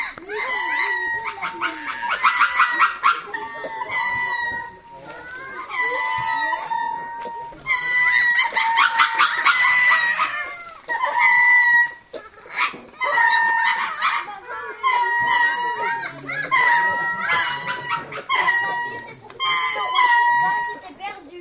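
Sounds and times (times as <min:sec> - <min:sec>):
laughter: 0:00.0 - 0:20.9
lemur chorus of wails and yelps: 0:00.0 - 0:21.0.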